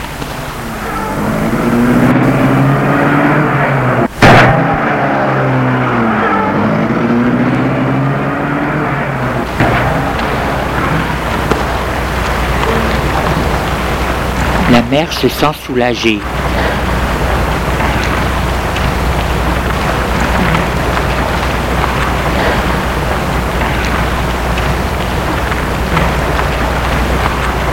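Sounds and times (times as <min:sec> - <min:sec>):
steady rain-like hiss: 0:00.0 - 0:27.7
car engine starting and revving as the car pulls away: 0:00.4 - 0:27.7
sharp knock: 0:04.2 - 0:04.7
speech: 0:14.9 - 0:16.4.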